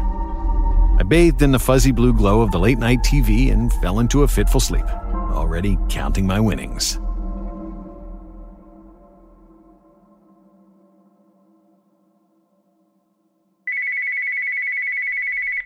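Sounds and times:
low droning tone: 0.0s - 13.1s
speech: 1.0s - 7.0s
cordless phone ringing electronically: 13.7s - 15.6s.

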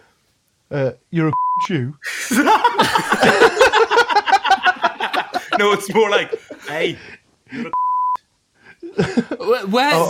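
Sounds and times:
speech: 0.7s - 3.9s, 5.6s - 7.8s, 9.0s - 10.0s
1 kHz censor bleep: 1.3s - 1.7s, 7.7s - 8.2s
laughter: 2.1s - 7.8s, 8.7s - 9.6s.

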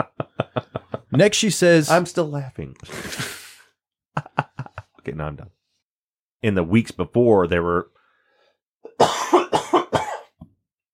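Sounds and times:
laughter: 0.0s - 1.3s, 4.2s - 5.0s
speech: 1.1s - 3.4s, 5.0s - 5.6s, 6.4s - 8.0s
harsh coughs: 8.9s - 10.4s.

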